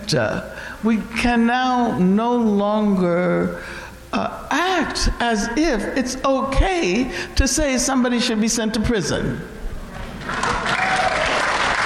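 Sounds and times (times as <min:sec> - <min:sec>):
speech: 0:00.1 - 0:09.6
audience applause: 0:10.2 - 0:11.8.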